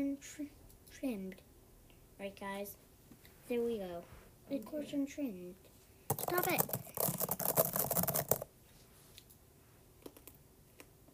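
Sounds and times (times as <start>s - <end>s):
speech: 0.0s - 1.5s, 2.2s - 2.9s, 3.5s - 6.9s
rapid typing on a keyboard: 6.1s - 8.5s.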